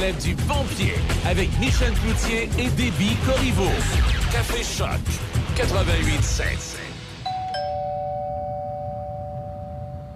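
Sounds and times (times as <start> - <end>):
speech: 0.0 - 6.8
two-tone doorbell chime: 7.2 - 10.1.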